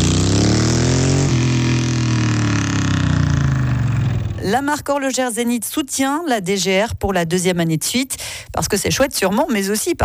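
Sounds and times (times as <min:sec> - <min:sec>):
customised vintage motorcycle engine revving: 0:00.0 - 0:04.4
speech: 0:04.5 - 0:10.0.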